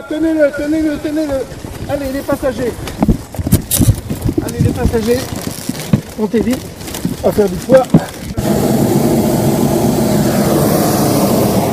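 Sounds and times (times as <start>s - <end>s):
speech: 0.1s - 3.1s, 4.5s - 5.4s, 6.2s - 8.6s
hot air balloon burner firing at takeoff: 8.1s - 11.7s.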